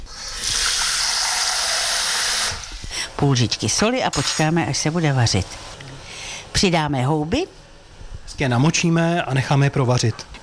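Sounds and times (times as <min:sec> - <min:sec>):
water gushing into a cooking pot from a tap: 0:00.0 - 0:02.8
speech: 0:03.2 - 0:05.8, 0:06.6 - 0:07.6, 0:08.3 - 0:10.3.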